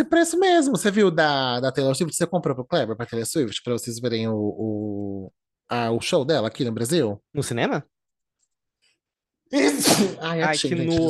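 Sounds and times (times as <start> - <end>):
speech: 0.0 - 8.0, 9.5 - 11.0
sneeze: 9.6 - 10.2.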